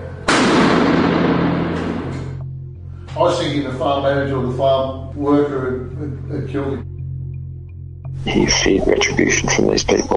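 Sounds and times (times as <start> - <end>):
gunshot: 0.2 - 2.4
speech: 3.2 - 6.9, 8.2 - 10.1.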